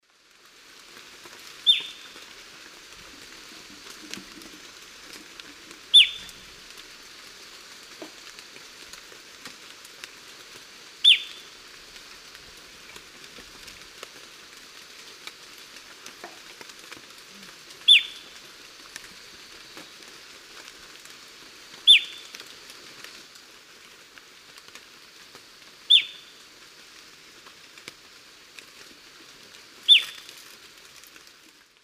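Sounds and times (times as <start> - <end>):
Formicarius colma call in South American eastern lowlands: 1.6 - 2.2, 5.9 - 6.4, 11.0 - 11.5, 17.4 - 18.4, 21.8 - 22.3, 25.9 - 26.4, 29.9 - 30.3.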